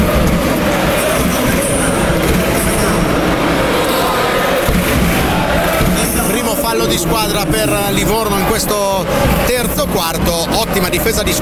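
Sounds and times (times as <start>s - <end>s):
basketball fan section chanting and cheering in a packed arena: 0.0s - 11.4s
speech: 6.8s - 11.4s.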